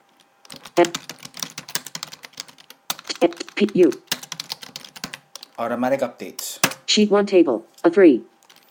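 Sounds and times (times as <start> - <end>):
typing on a computer keyboard into a spreadsheet: 0.4 - 5.6
speech: 0.8 - 1.1, 3.2 - 4.1, 5.6 - 8.3.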